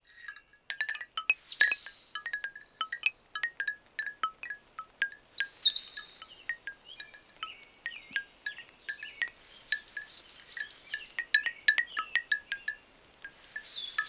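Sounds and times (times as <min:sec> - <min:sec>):
dry ticking bird notes in woodland: 0:00.0 - 0:14.0
bird twittering in woodland: 0:01.4 - 0:02.4, 0:05.4 - 0:12.8, 0:13.4 - 0:14.0.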